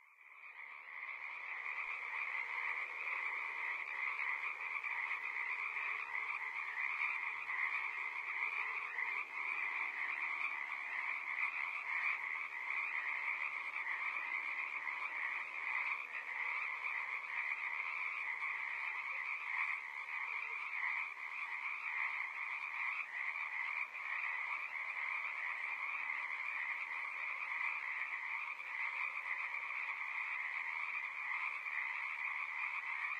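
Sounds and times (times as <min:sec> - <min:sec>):
dense chorus of frogs croaking: 0:00.0 - 0:33.1.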